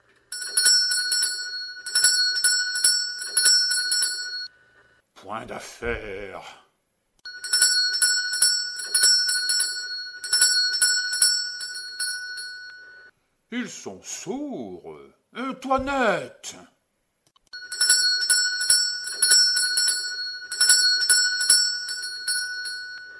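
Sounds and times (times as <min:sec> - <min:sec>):
small hand bell being shaken rapidly: 0:00.3 - 0:04.5, 0:07.3 - 0:13.1, 0:17.6 - 0:23.1
speech: 0:05.3 - 0:06.6, 0:13.5 - 0:16.8.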